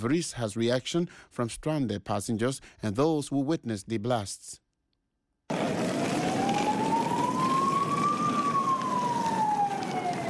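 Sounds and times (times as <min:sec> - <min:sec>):
speech: 0:00.0 - 0:04.6
city traffic noise: 0:05.5 - 0:10.2
emergency vehicle siren wailing on city streets: 0:05.5 - 0:10.2.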